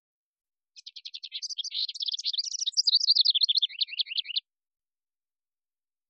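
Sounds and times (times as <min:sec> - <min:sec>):
house wren song of high trills and chatters: 0:00.8 - 0:04.4.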